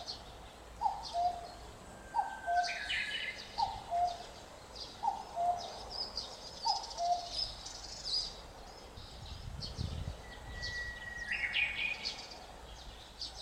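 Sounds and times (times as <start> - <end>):
common cuckoo calling cu-coo: 0.0 - 5.8, 6.6 - 7.6, 10.2 - 12.4
small birds chirping: 0.0 - 13.4.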